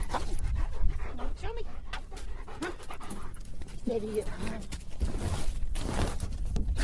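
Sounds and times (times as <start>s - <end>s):
German Shepherd search and rescue dog panting during training: 0.0s - 4.7s
outdoor noise in Bringle Lake Park in Texarkana: 0.0s - 6.8s.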